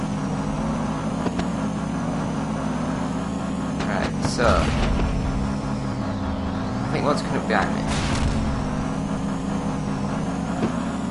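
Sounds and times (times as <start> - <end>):
racing video game car engine droning: 0.0 - 11.0
faint higher whine: 3.8 - 11.0
speech: 4.4 - 4.9, 7.0 - 8.2.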